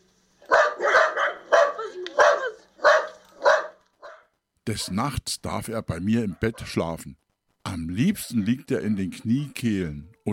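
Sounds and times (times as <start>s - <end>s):
small wire-haired dachshund barking: 0.5s - 5.0s, 6.3s - 6.8s
speech: 4.7s - 10.3s.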